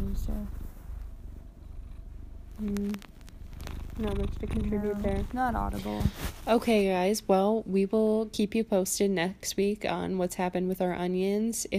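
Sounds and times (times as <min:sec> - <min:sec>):
cat purring softly: 0:00.0 - 0:08.6
speech: 0:02.6 - 0:03.1, 0:04.0 - 0:11.7.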